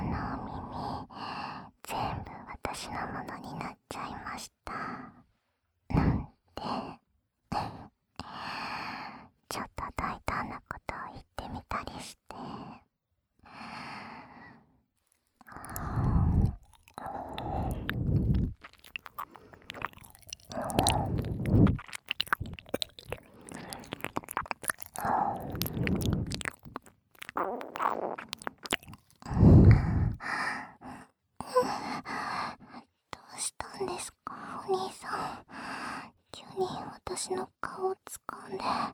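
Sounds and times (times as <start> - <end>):
person whispering: 0.0 - 5.2, 5.9 - 8.3, 9.5 - 12.8, 15.4 - 30.3, 31.4 - 38.9
soft sighs and breaths: 0.0 - 22.6, 29.2 - 38.9
wet ear-licking mouth sounds: 15.4 - 30.2
speech: 37.2 - 38.9.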